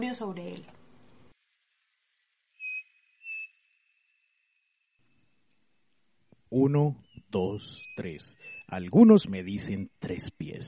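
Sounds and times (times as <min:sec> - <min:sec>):
speech: 0:00.0 - 0:00.8, 0:06.5 - 0:10.6
steady high-pitched drone of insects: 0:00.0 - 0:10.6
striped cuckoo Tapera naevia whistled song in Ibagué: 0:02.5 - 0:03.9, 0:07.0 - 0:08.8.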